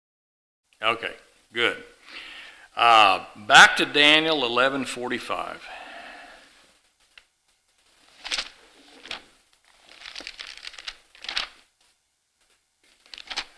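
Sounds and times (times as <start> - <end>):
speech: 0.8 - 5.8
paper pages being flipped: 7.0 - 13.5.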